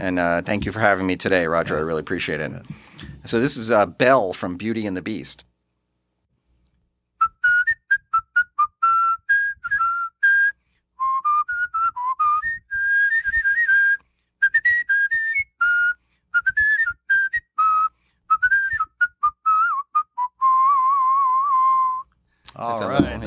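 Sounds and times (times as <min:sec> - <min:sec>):
speech: 0:00.0 - 0:05.5
man whistling a bright tuneful song melody with trills: 0:07.2 - 0:22.2.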